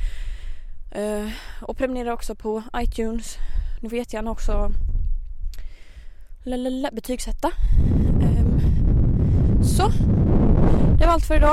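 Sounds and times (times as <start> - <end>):
speech: 1.0 - 4.9, 6.4 - 8.0, 9.7 - 10.3, 11.1 - 11.5
heavy wind buffeting the microphone outdoors in Stockholm: 2.7 - 6.2, 7.2 - 11.5.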